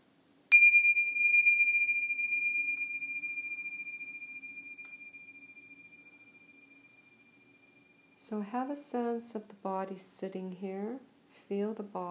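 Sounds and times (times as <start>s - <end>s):
meditation bell ringing: 0.5s - 8.3s
speech: 8.3s - 12.0s.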